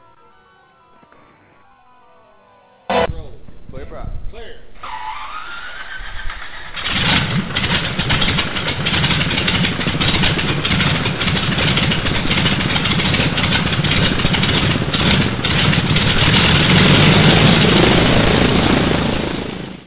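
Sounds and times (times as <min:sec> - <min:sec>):
engine cranking, starting and running: 0:04.6 - 0:19.8.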